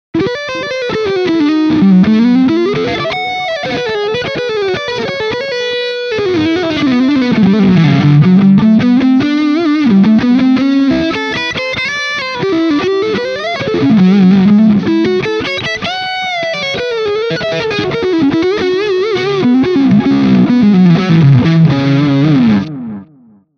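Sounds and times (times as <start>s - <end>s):
overdriven guitar lead line: 0.2s - 23.5s.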